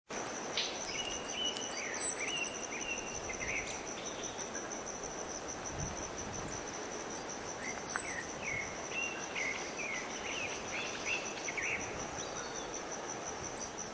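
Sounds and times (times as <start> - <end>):
constant shrill insect drone: 0.2 - 13.9
São Francisco sparrow singing: 0.6 - 4.6, 6.9 - 13.9
scattered mid-pitched bird chirps: 0.6 - 4.7, 6.8 - 13.9.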